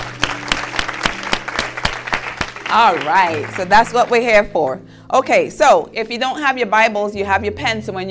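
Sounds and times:
audience clapping hands: 0.0 - 4.5
speech: 2.7 - 8.0.

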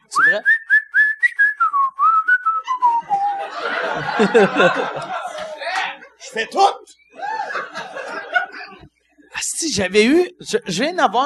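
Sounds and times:
speech: 0.2 - 0.6, 3.9 - 5.2, 6.3 - 7.0, 9.6 - 11.2
person whistling a bright descending tune: 0.2 - 3.4
several people chattering: 2.6 - 8.9
several people laughing: 2.7 - 8.9.

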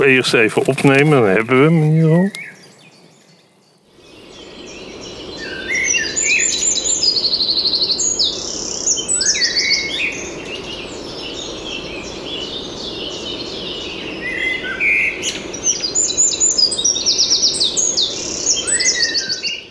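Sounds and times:
speech: 0.0 - 2.5
wren singing high-pitched trills: 0.0 - 19.6.

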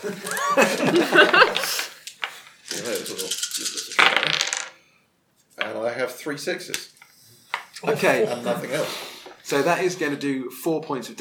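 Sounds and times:
speech: 0.0 - 1.5, 6.2 - 7.0, 7.8 - 11.2
laughter: 0.0 - 2.0, 7.8 - 9.8
five stress dice clattering across a hard tabletop during a role-playing game: 0.2 - 4.8.

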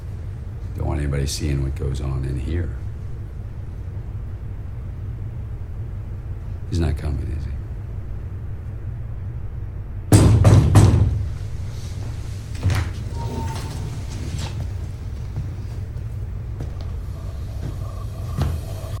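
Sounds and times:
steady low rumble: 0.0 - 10.1, 11.3 - 18.9
speech: 1.0 - 2.9, 6.7 - 7.6
door pulled open with a loud scraping rush: 11.2 - 16.0, 16.6 - 18.9.

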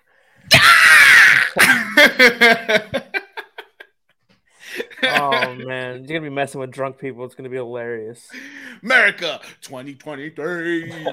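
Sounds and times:
person imitating a bald eagle screech with staccato chirps: 0.5 - 1.6
laughter: 1.6 - 3.9, 4.6 - 5.6, 10.6 - 11.1
speech: 2.2 - 3.0, 5.7 - 11.1.

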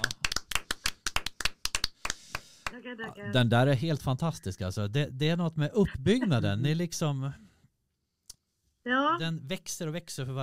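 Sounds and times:
hands clapping: 0.0 - 2.8
speech: 2.7 - 7.4, 8.8 - 10.4.

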